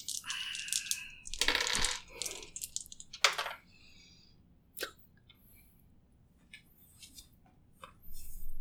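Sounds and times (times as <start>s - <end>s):
dice rolled for a strength roll in a tabletop game: 0.0s - 3.6s.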